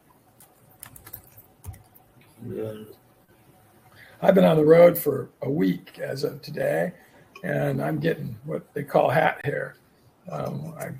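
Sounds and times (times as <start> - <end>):
typing a name and password on a computer keyboard: 0.4 - 2.1
speech: 2.4 - 3.0, 4.2 - 10.9.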